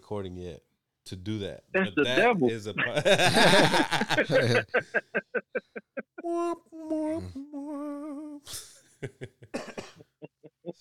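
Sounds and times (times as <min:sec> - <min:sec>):
speech: 0:00.1 - 0:10.0
laughter: 0:01.8 - 0:06.3
person coughing into a microphone: 0:09.6 - 0:10.1.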